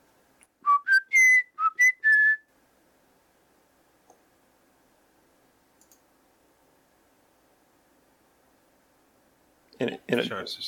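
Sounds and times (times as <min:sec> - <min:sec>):
whistled melody: 0:00.6 - 0:02.4
speech: 0:09.8 - 0:10.6.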